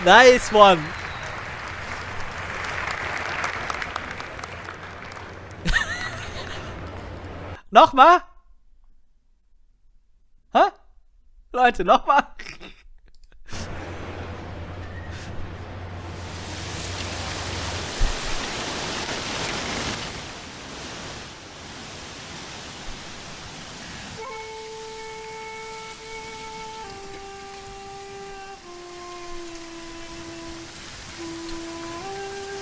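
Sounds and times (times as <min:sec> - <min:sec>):
speech: 0:00.0 - 0:01.0, 0:07.7 - 0:08.3, 0:10.5 - 0:10.8, 0:11.6 - 0:12.4
harsh distorted rain hiss with clipping: 0:00.0 - 0:07.6, 0:13.4 - 0:32.6
laughter: 0:00.0 - 0:07.6, 0:13.5 - 0:17.0.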